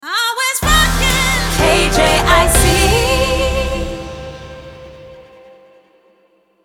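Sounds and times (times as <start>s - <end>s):
sung jingle sting in C minor: 0.6s - 5.7s.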